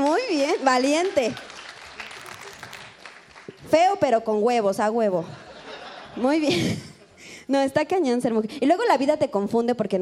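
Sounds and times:
audience applause: 0.0 - 3.6
speech: 0.6 - 1.5, 3.7 - 5.5, 6.2 - 6.9, 7.5 - 10.0.

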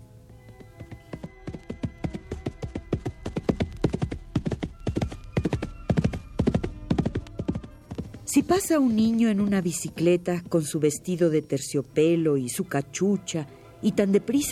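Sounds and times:
horse trotting with hooves clip-clopping on a hard surface: 0.3 - 11.3
speech: 8.4 - 14.5.

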